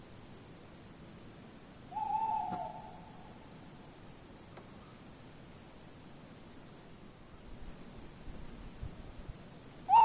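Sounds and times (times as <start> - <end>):
faint background hiss: 0.0 - 10.0
tawny owl hooting: 1.9 - 3.5, 9.9 - 10.0.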